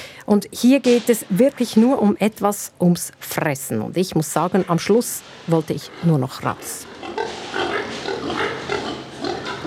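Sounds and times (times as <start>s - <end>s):
speech: 0.3s - 7.4s
many pigs grunting and squealing in a barn: 5.8s - 9.6s.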